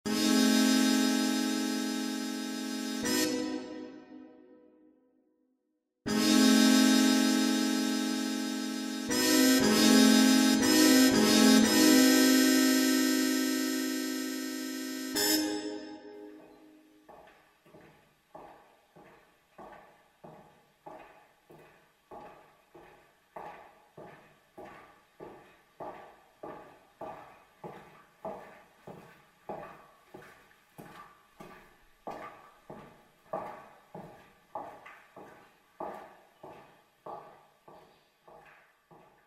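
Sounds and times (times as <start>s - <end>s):
chords: 0.1s - 4.8s, 6.1s - 16.9s
footsteps: 16.2s - 39.2s.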